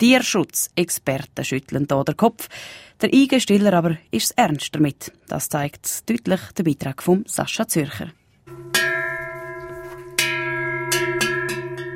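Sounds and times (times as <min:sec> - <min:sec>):
speech: 0:00.0 - 0:08.2
cowbell clanging on a grazing cow: 0:08.5 - 0:11.9.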